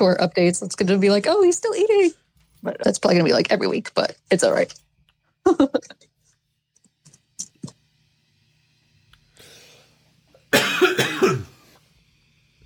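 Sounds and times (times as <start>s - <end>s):
speech: 0.0s - 4.8s, 5.4s - 6.1s
person coughing: 10.5s - 11.6s.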